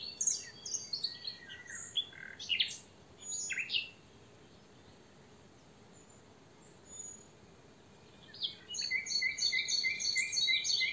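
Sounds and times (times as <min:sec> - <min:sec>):
European robin Erithacus rubecula song: 0:00.0 - 0:05.0, 0:08.0 - 0:10.9
quiet background hiss: 0:00.0 - 0:10.9.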